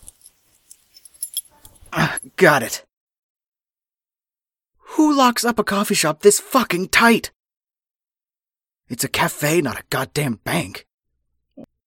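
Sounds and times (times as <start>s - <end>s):
keys jangling with bright metallic clinking: 0.0s - 2.4s
speech: 2.2s - 2.9s, 5.0s - 7.4s, 8.9s - 10.9s.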